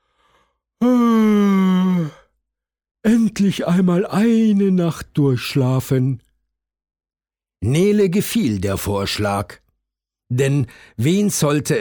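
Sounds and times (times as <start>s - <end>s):
loud deep voiced yawn: 0.8s - 2.4s
speech: 3.0s - 6.2s, 7.6s - 9.6s, 10.3s - 11.7s.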